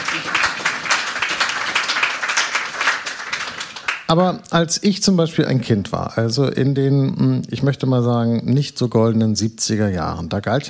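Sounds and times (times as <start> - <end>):
audience applause: 0.0 - 4.2
speech: 4.1 - 10.6.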